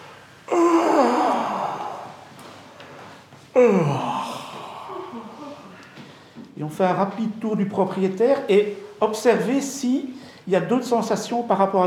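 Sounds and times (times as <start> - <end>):
person yawning while stretching: 0.5 - 2.3, 3.5 - 5.9
speech: 3.6 - 4.1, 6.6 - 11.8.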